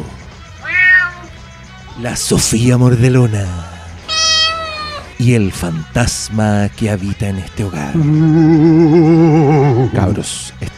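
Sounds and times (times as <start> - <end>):
cat meowing: 0.6 - 1.3, 4.1 - 5.2
speech: 2.0 - 3.7, 5.2 - 10.7.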